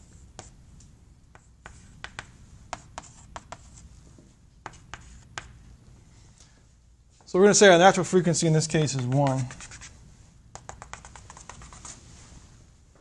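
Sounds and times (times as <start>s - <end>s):
handwriting strokes: 1.3s - 3.9s, 4.6s - 5.6s, 8.8s - 12.0s
speech: 7.3s - 9.8s.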